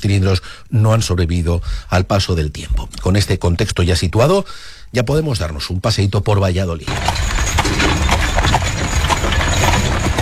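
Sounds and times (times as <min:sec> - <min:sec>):
speech: 0:00.0 - 0:08.0
carriage wheels rolling: 0:06.9 - 0:10.2
hooves of a horse-drawn carriage clip-clopping: 0:06.9 - 0:10.2.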